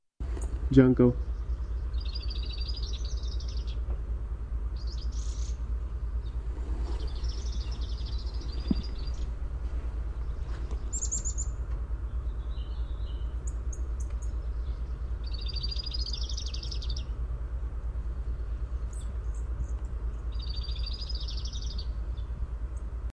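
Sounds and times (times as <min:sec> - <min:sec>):
dark-eyed junco Junco hyemalis singing: 0:00.2 - 0:23.1.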